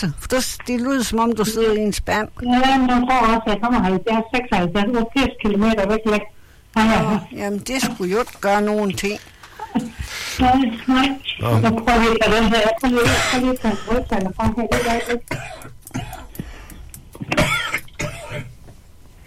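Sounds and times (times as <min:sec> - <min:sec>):
speech: 0:00.0 - 0:16.2
person clearing throat: 0:13.0 - 0:13.5, 0:14.7 - 0:16.4, 0:17.2 - 0:18.5
person coughing: 0:13.0 - 0:13.9, 0:14.7 - 0:16.4, 0:17.3 - 0:18.5.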